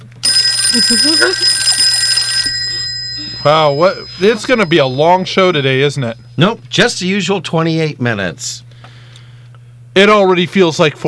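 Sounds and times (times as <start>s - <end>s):
telephone bell ringing: 0.2s - 5.4s
speech: 0.7s - 1.8s, 3.4s - 8.7s, 10.0s - 11.0s.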